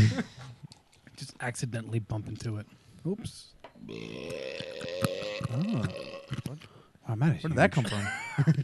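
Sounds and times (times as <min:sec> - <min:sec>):
speech: 0:00.0 - 0:00.4, 0:01.4 - 0:08.6
long loud croaky burp: 0:03.8 - 0:06.6.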